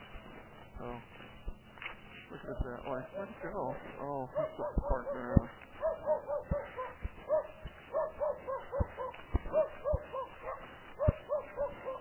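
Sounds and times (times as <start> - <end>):
speech: 0.8 - 1.1, 2.3 - 6.2
guard dog barking: 4.2 - 11.9.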